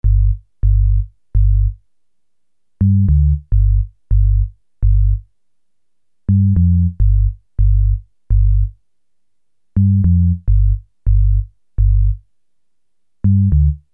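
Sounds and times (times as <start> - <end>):
sine bass at 138 BPM: 0.0 - 1.8, 2.8 - 5.2, 6.3 - 8.8, 9.8 - 12.2, 13.3 - 13.9.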